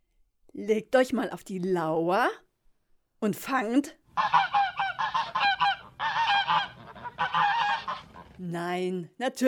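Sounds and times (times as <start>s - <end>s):
speech: 0.6s - 2.4s, 3.2s - 4.6s, 8.4s - 9.4s
geese cackling and honking: 4.1s - 8.4s.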